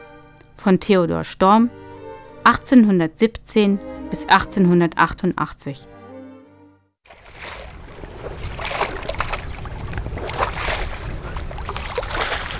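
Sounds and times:
speech: 0:00.6 - 0:01.8, 0:02.4 - 0:06.0
calm sea waves washing onto a beach: 0:07.1 - 0:12.5.

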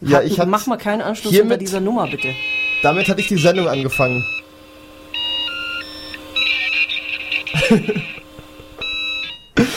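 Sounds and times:
speech: 0:00.0 - 0:04.4, 0:07.7 - 0:08.0
dial-up modem handshake from external modem speaker: 0:02.0 - 0:04.4, 0:05.1 - 0:08.2
laughter: 0:06.7 - 0:08.8, 0:09.6 - 0:09.7.

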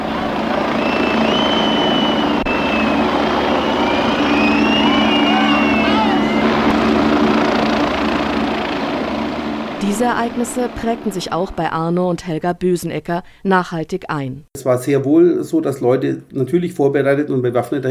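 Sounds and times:
helicopter rotor droning overhead: 0:00.0 - 0:11.9
high whistles: 0:00.7 - 0:06.7
clamor of a large crowd: 0:00.8 - 0:06.7
speech: 0:10.0 - 0:17.8.

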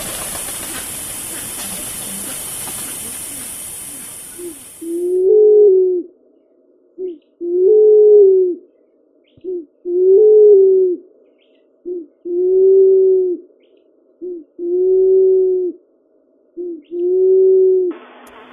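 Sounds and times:
burst of hissing noise: 0:00.0 - 0:05.2
pink pigeons cooing on a small island of Mauritius: 0:00.0 - 0:06.1, 0:07.0 - 0:08.7, 0:09.4 - 0:11.0, 0:11.8 - 0:13.5, 0:14.2 - 0:15.8, 0:16.6 - 0:17.9.

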